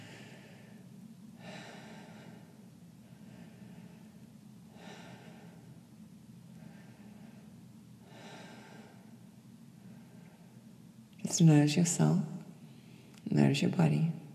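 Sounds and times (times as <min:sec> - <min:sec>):
deep rhythmic breathing: 0:00.0 - 0:11.0
constant low hum: 0:00.0 - 0:14.3
speech: 0:11.4 - 0:12.3, 0:13.5 - 0:14.2.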